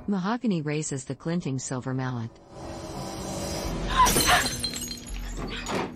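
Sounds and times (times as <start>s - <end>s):
speech: 0.1s - 2.7s
glass jar shattering in a bathroom basin: 3.9s - 5.9s
glass shards tinkling: 4.0s - 5.8s.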